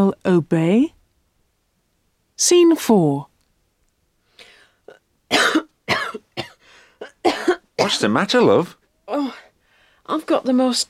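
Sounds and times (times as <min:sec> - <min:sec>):
speech: 0:00.0 - 0:01.0, 0:02.4 - 0:03.3, 0:07.2 - 0:09.4, 0:10.1 - 0:10.8
ill person coughing harshly: 0:05.3 - 0:08.1.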